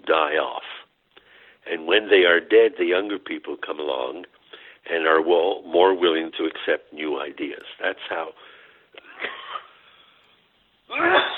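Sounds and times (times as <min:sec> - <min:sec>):
speech: 0:00.1 - 0:00.7, 0:01.6 - 0:08.5, 0:09.2 - 0:09.4, 0:10.9 - 0:11.3
person coughing: 0:09.0 - 0:09.8.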